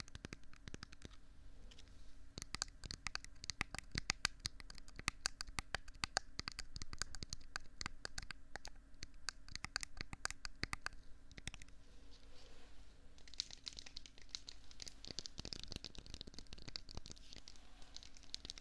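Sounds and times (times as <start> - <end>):
crinkly tapping and squishing on rubbery objects: 0.0 - 1.2, 2.3 - 11.7, 13.2 - 18.6
soft rustling: 10.9 - 18.6.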